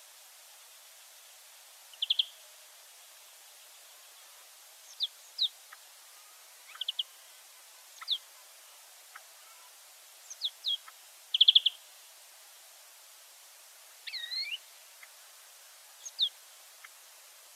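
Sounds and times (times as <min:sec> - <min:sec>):
European greenfinch Chloris chloris giving ticking trills: 0:01.9 - 0:02.4, 0:06.6 - 0:07.1, 0:07.9 - 0:08.4, 0:09.1 - 0:11.8, 0:14.1 - 0:15.2, 0:16.0 - 0:17.0.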